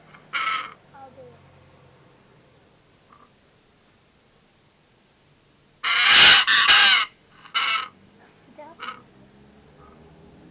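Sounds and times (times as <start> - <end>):
Pesquet's parrot screeching: 5.8 - 7.9.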